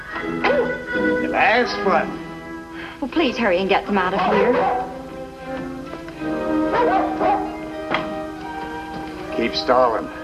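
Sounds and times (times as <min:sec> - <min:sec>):
dog barking: 0:00.4 - 0:00.8, 0:04.2 - 0:05.0, 0:06.7 - 0:07.6
speech: 0:01.3 - 0:02.2, 0:03.0 - 0:04.9, 0:09.4 - 0:10.2.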